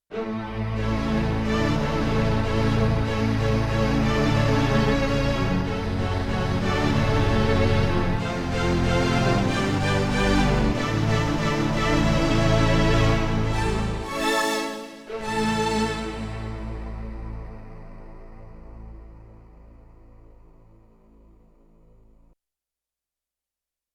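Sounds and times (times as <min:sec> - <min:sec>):
sampled string mix: 0:00.1 - 0:21.9.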